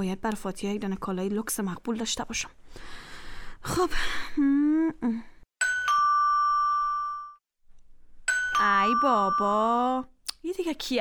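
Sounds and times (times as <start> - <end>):
speech: 0.0 - 3.0, 3.6 - 5.3, 8.6 - 11.0
doorbell ringing with a two-tone ding-dong chime: 5.6 - 7.4, 8.3 - 9.9.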